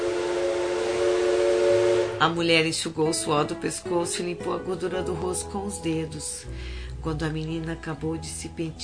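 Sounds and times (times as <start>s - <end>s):
train whistle blowing a long chord-like tone: 0.0s - 2.4s
speech: 2.2s - 8.8s.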